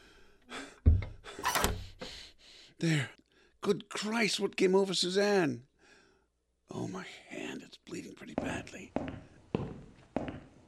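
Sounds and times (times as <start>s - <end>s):
door thudding shut: 0.9s - 1.9s
speech: 2.8s - 5.7s, 6.8s - 9.2s.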